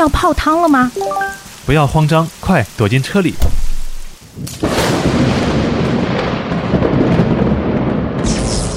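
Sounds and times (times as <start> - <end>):
speech: 0.0 - 3.6, 4.4 - 5.7
rain hiss: 0.0 - 6.2
thunder crack and rumble: 3.4 - 8.7.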